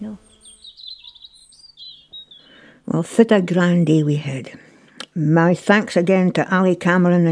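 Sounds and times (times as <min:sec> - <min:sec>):
birds singing outdoors in countryside: 0:00.0 - 0:04.3
speech: 0:02.9 - 0:07.3.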